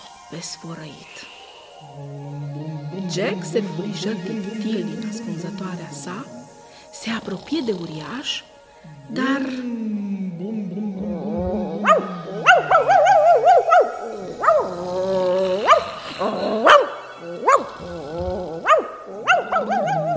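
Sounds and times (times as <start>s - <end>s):
speech: 0.3s - 6.4s, 7.0s - 9.9s
dog growling: 1.8s - 20.1s
dog whining: 11.5s - 20.1s
dog under a chair barking furiously: 11.8s - 14.7s, 18.6s - 20.1s.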